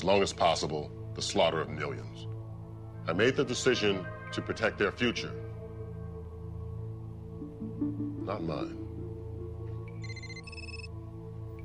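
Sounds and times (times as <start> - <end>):
speech: 0.0 - 2.3, 3.1 - 5.5, 8.3 - 8.8
scrambler phone ringing: 9.8 - 11.0.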